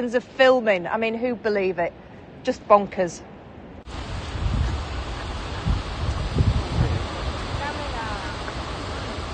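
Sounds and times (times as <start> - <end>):
speech: 0.0 - 3.3
low gusts buffeting the microphone: 3.8 - 9.3
falling waterfall spray: 3.9 - 9.3
waterfall roaring heard from the bottom of the falls: 3.9 - 9.3.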